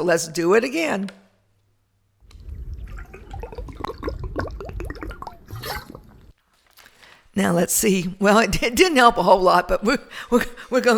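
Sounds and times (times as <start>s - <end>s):
speech: 0.0s - 1.2s, 7.4s - 10.9s
person drinking water from a bottle: 2.2s - 7.0s.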